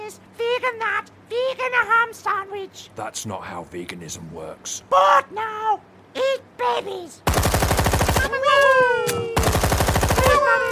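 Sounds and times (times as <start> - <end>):
speech: 0.1 - 7.5, 8.2 - 9.3
Gatling machine-gun fire sound effect: 7.3 - 8.5, 9.4 - 10.6.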